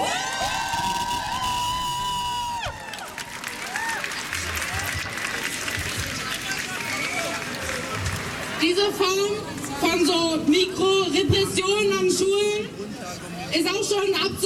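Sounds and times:
high whoops: 0.0s - 4.1s
crowd cheering and shouting at a school students' strike protest against conscription: 0.0s - 12.0s
steady clapping: 2.9s - 8.4s
speech: 8.8s - 12.8s, 13.5s - 14.4s.

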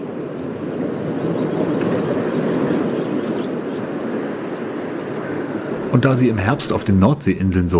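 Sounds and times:
steady low rushing background: 0.0s - 7.7s
meadow pipits calling while migrating south over a North Sea island in autumn: 0.1s - 5.8s
speech: 6.0s - 7.7s.

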